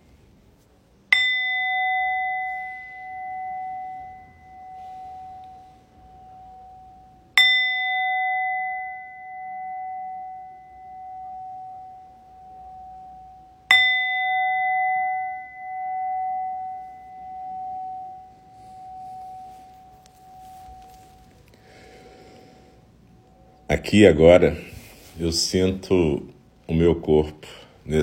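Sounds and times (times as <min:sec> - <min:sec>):
meditation bell ringing: 0:01.1 - 0:26.2
speech: 0:23.7 - 0:28.0.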